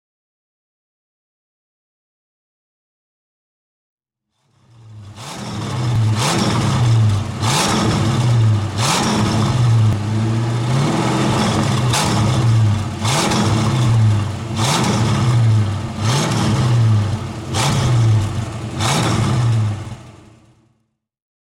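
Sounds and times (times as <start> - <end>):
Ford Mustang 289 V8 engine: 4.4 - 20.9.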